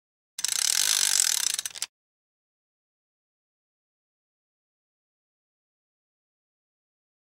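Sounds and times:
thread unwinding from a spool: 0.4s - 1.9s.

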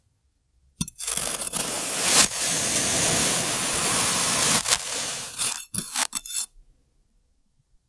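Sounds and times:
garden trowel: 0.8s - 6.5s.

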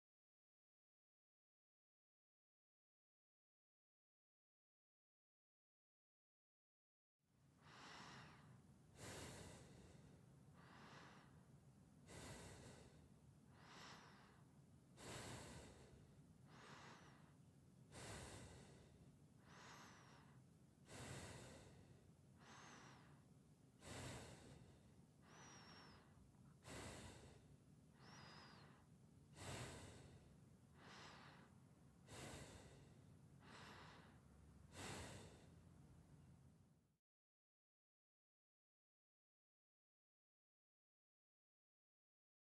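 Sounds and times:
person breathing through nose: 7.6s - 35.8s.

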